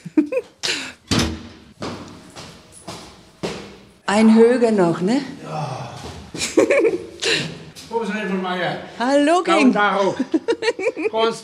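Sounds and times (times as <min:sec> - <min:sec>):
door being opened: 0:01.1 - 0:01.6
speech: 0:04.1 - 0:05.8, 0:08.0 - 0:11.4
laughter: 0:06.4 - 0:07.6, 0:09.9 - 0:11.4.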